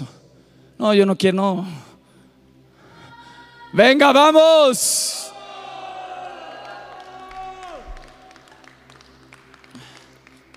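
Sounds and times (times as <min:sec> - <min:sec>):
speech: 0:00.8 - 0:01.9, 0:03.7 - 0:05.3
audience applauding in a big room: 0:06.2 - 0:10.5.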